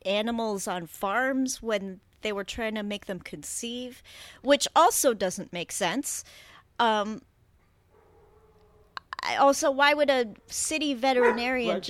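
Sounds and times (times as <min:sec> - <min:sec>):
speech: 0:00.0 - 0:07.3, 0:09.2 - 0:11.8
dog barking: 0:07.9 - 0:08.9, 0:11.2 - 0:11.8.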